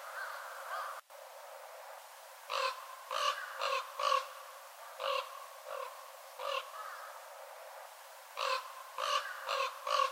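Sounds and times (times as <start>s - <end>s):
northern raven giving rasping harsh caws: 0.0s - 1.0s, 2.5s - 7.2s, 8.4s - 10.1s.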